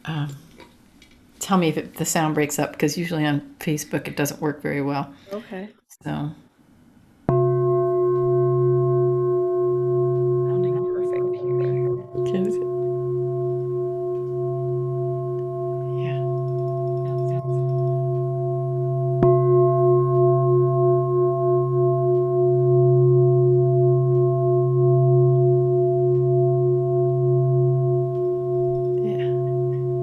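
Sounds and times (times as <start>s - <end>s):
speech: 0.0s - 0.5s, 1.5s - 6.5s
crystal singing bowl played with a mallet: 7.3s - 30.0s.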